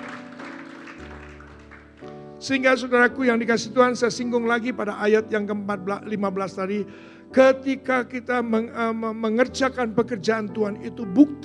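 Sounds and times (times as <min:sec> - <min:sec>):
audience applause: 0:00.0 - 0:02.1
sustained keyboard chords: 0:00.0 - 0:11.4
speech: 0:02.4 - 0:11.4.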